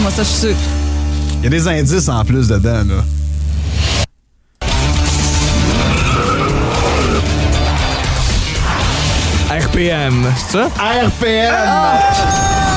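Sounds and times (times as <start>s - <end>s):
speech: 0.1s - 0.8s, 1.4s - 3.8s, 9.8s - 12.7s
loud car engine roaring: 5.2s - 9.3s
car tires skidding and squealing: 5.5s - 7.6s.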